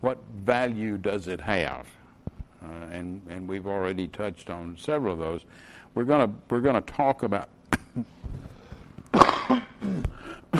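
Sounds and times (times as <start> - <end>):
speech: 0.0 - 2.0, 2.6 - 8.5
coughs into a microphone: 9.1 - 10.5.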